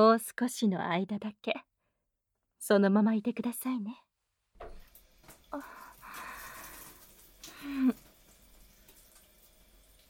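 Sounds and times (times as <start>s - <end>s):
speech: 0.0s - 1.7s, 2.6s - 4.0s, 5.5s - 5.8s
warm water pouring through hair: 4.6s - 10.0s.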